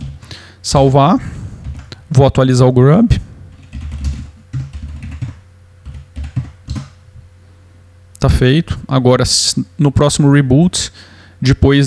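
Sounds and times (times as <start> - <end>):
speech: 0.6 - 1.4, 2.2 - 3.2, 8.2 - 11.8
typing on a computer keyboard: 3.7 - 6.9.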